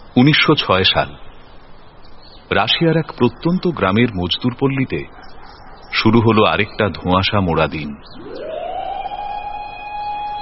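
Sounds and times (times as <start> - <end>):
soft hiss: 0.0 - 8.2
speech: 0.2 - 1.3, 2.5 - 8.5
factory siren wailing at dawn over a workers' settlement in a Russian village: 8.1 - 10.4.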